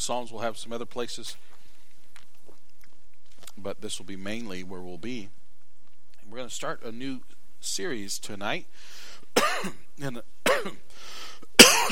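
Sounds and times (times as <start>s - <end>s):
speech: 0.0s - 1.6s, 3.6s - 5.4s, 6.3s - 11.9s
soft breathy exhale: 8.8s - 9.3s, 10.9s - 11.4s
man coughing in sharp harsh bursts: 9.4s - 9.8s, 10.4s - 10.8s, 11.6s - 11.9s
man's gravelly throat clearing: 11.6s - 11.9s.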